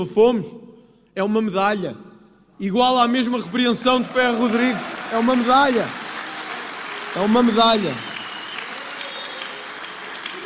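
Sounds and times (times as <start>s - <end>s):
speech: 0.0s - 0.6s, 1.2s - 6.0s, 7.1s - 8.1s
crowd clapping at a rally: 3.5s - 10.4s
crowd whistling at a rally: 7.2s - 10.4s.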